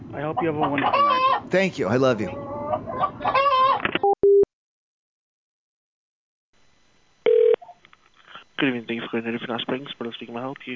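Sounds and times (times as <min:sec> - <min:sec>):
speech: 0:00.1 - 0:03.4, 0:08.6 - 0:10.7
chicken clucking and squawking: 0:00.2 - 0:01.4, 0:02.3 - 0:03.8.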